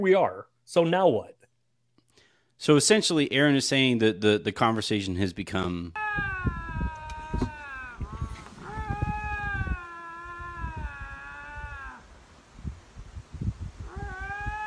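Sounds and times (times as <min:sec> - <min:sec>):
speech: 0:00.0 - 0:01.4, 0:02.6 - 0:06.4
cat meowing for food: 0:06.0 - 0:12.0, 0:13.8 - 0:14.6.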